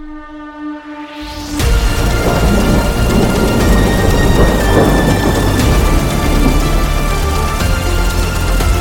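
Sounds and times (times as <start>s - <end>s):
steady heavy rain at night: 1.6s - 8.7s
deep continuous rumble of thunder at night: 1.7s - 8.7s.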